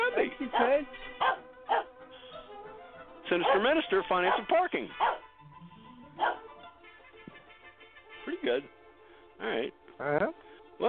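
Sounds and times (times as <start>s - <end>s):
speech: 0.4s - 1.3s, 3.3s - 5.2s, 8.3s - 8.8s, 9.4s - 10.8s
dog barking: 0.5s - 2.0s, 3.3s - 5.3s, 6.2s - 6.6s.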